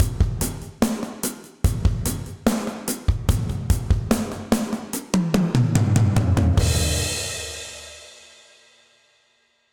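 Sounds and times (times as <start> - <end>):
session drums with dark plate reverb: 0.0 - 8.9.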